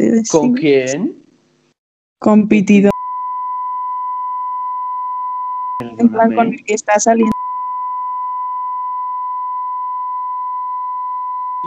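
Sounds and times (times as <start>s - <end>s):
speech: 0.0s - 1.2s, 2.2s - 2.9s, 6.0s - 7.3s
steady bleep tone: 2.9s - 11.6s.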